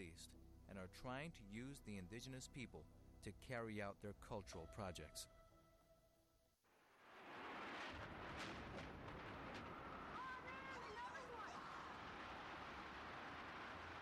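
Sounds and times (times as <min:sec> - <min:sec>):
speech: 0:00.0 - 0:05.4
loud explosion with roaring rumble: 0:07.0 - 0:10.8, 0:11.7 - 0:14.0.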